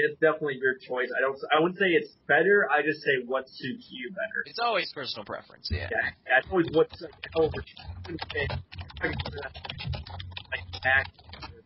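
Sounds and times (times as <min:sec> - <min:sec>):
speech: 0:00.0 - 0:11.5
rapid typing on a loud computer keyboard: 0:06.5 - 0:11.6.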